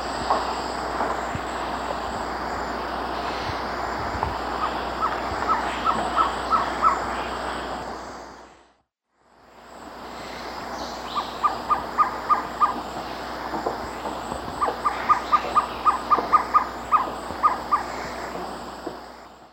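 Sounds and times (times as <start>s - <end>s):
busy forest background in eastern lowlands of South America: 0.0s - 19.5s
Amazonian Violaceous Trogon giving hollow notes: 3.2s - 7.6s, 11.0s - 19.2s.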